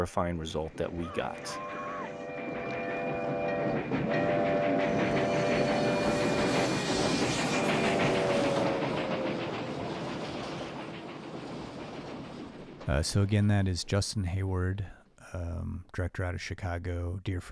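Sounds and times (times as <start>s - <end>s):
speech: 0.0s - 1.8s, 12.9s - 17.4s
train rumbling on rails: 0.0s - 15.9s
train horn: 1.4s - 9.5s.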